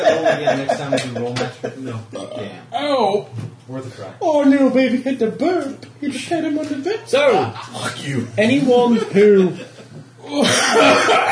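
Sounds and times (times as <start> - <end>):
laughter: 0.0 - 2.1, 8.8 - 11.3
speech: 0.1 - 9.7, 10.3 - 11.3
harsh coughing from someone choking on a drink: 10.4 - 11.3.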